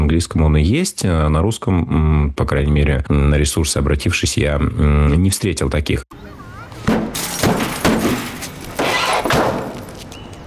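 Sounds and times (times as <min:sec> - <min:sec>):
speech: 0:00.1 - 0:06.2
heavy mirror thrown from a window smashing onto a car: 0:06.8 - 0:10.0
metal crunching: 0:06.8 - 0:10.3
glass breaking: 0:06.9 - 0:10.0.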